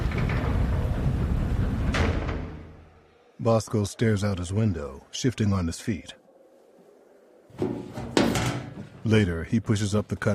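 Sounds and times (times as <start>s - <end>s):
heavy metal cell block door sliding along its track and shutting: 0.0s - 2.9s, 7.6s - 8.9s
speech: 3.4s - 6.2s, 7.6s - 10.3s.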